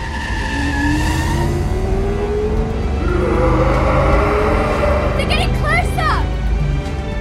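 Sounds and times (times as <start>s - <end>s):
faint tire squeal: 0.0s - 2.0s, 2.7s - 6.0s
truck engine revving as it drives off: 0.0s - 7.1s.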